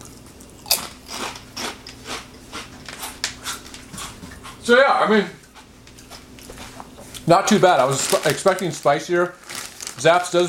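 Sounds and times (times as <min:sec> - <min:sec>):
bunched-up spicy snack chips crunching as they are chewed: 0:00.0 - 0:03.9, 0:06.0 - 0:10.4
speech: 0:04.7 - 0:05.4, 0:07.3 - 0:09.4, 0:10.0 - 0:10.4.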